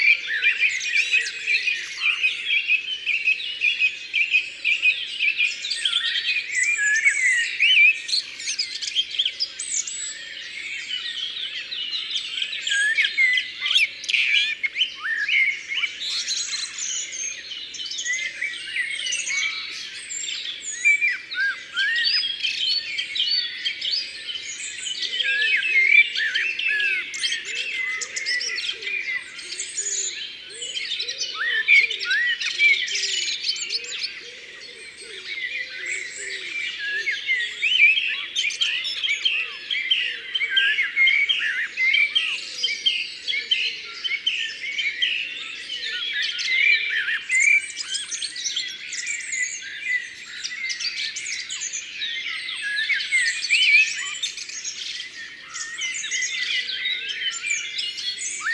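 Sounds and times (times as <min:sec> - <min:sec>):
song thrush singing in Ardeche: 0:00.0 - 0:58.5.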